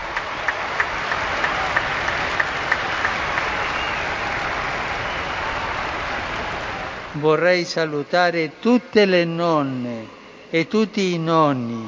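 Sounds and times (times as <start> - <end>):
large crowd applauding for grandparents: 0.0 - 7.2
speech: 7.2 - 11.8.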